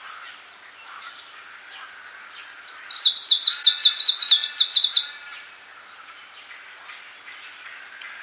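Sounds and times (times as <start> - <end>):
icterine warbler singing a high pulsing trill: 2.7 - 5.2.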